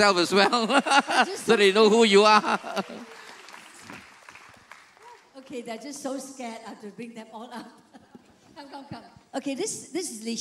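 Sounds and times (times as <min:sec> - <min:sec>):
speech: 0:00.0 - 0:03.1, 0:05.5 - 0:07.9, 0:08.6 - 0:10.3
laughter: 0:00.2 - 0:03.4
room full of people applauding: 0:01.2 - 0:06.4.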